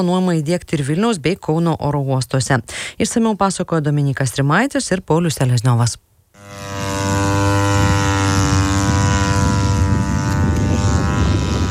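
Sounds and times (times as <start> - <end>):
speech: 0.0 - 6.8
Shahed-type unmanned drone propeller engine taking off: 6.4 - 11.6.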